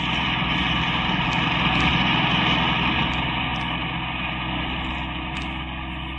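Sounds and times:
car engine humming while driving: 0.0 - 6.1.

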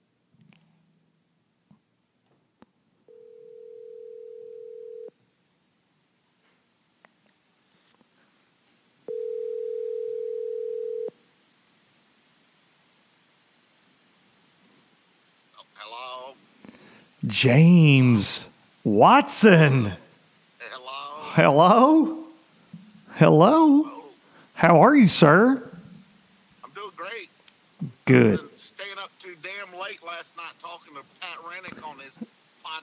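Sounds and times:
phone ringing tone through an earpiece: 3.1 - 5.1, 9.1 - 11.1
speech: 17.3 - 20.0, 21.4 - 22.2, 23.2 - 23.8, 24.6 - 25.6, 28.1 - 28.5.

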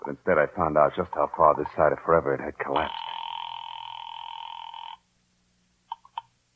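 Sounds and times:
speech: 0.0 - 3.0
telephone ringing with an electronic trill: 2.8 - 5.0.

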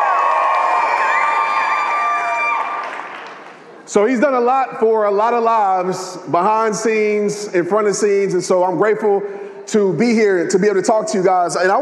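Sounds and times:
crowd cheering and whooping at a live talk event: 0.0 - 3.4
speech: 3.9 - 11.8.

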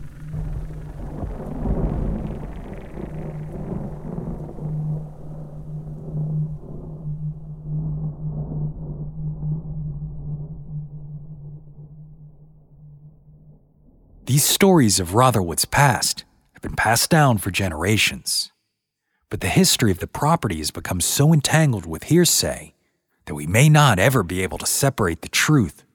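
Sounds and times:
rolling thunder during a storm: 0.0 - 11.8
speech: 14.3 - 18.5, 19.3 - 25.9.

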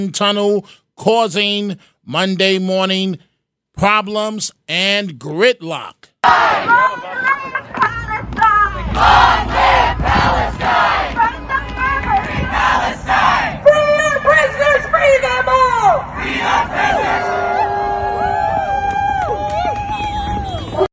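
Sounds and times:
speech: 0.0 - 7.3, 9.0 - 10.9
crowd of protesters chanting: 6.2 - 7.8, 8.6 - 14.3, 15.9 - 17.6
crowd of protesters shouting and yelling: 6.2 - 7.8, 8.5 - 20.8.

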